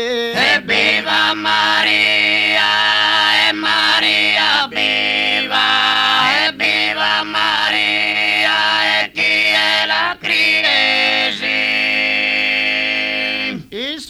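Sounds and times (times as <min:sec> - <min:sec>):
a cuncordu and tenore polyphonic singing: 0:00.2 - 0:13.8.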